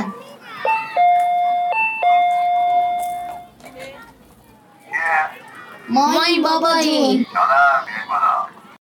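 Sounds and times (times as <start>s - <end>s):
children chattering faintly: 0.0s - 8.8s
front doorbell two-tone ding-dong chime: 0.7s - 3.5s
speech: 5.9s - 7.9s.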